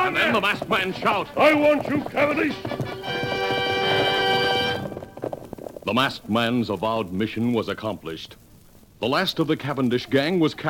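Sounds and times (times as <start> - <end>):
galloping horse hoofbeats: 0.0 - 6.6
speech: 0.3 - 2.8, 5.9 - 8.4, 9.0 - 10.6.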